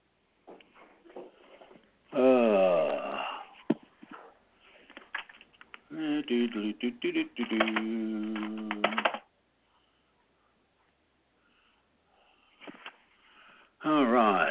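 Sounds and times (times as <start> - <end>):
person humming: 2.1 - 3.4, 5.9 - 9.2
speech: 6.4 - 8.9
typewriter keys clacking: 7.4 - 9.2.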